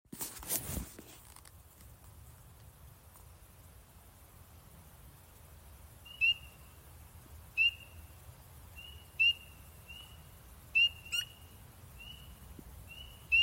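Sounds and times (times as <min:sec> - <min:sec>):
brief rustle: 0:00.1 - 0:03.3
Pseudacris crucifer spring peeper peeping in Maryland: 0:06.0 - 0:06.8, 0:07.5 - 0:13.4.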